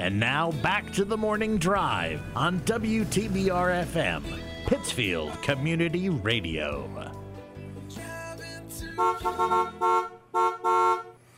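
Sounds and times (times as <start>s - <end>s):
speech: 0.0s - 7.1s, 9.0s - 10.5s
car horn honking: 8.9s - 11.2s.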